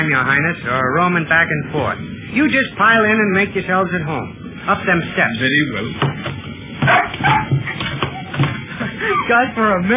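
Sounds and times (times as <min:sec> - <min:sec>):
speech: 0:00.0 - 0:06.3, 0:09.3 - 0:09.9
dog barking and yipping: 0:06.8 - 0:08.0.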